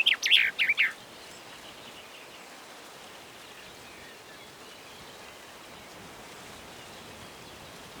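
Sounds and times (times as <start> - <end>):
Common chaffinch Fringilla coelebs giving descending chirps: 0.0 - 1.0.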